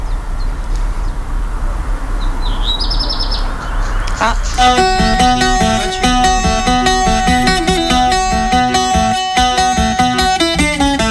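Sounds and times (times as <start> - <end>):
birds chirping and trilling outdoors: 0.0 - 10.5
steady low rumble of noise: 3.4 - 10.0
speech: 4.2 - 5.1.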